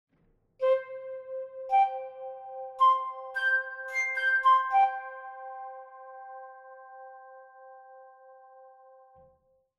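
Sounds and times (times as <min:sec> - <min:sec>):
flute sound effect: 0:00.6 - 0:07.6.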